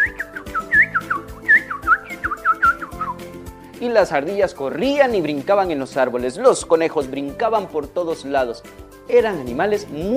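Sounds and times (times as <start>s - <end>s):
cheerful whistled birdsong imitation: 0.0s - 3.3s
speech: 3.8s - 10.1s.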